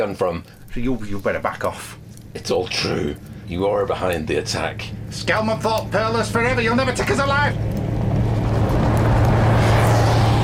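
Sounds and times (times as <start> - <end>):
speech: 0.0 - 7.8
armored vehicle engine droning loudly: 1.4 - 10.4.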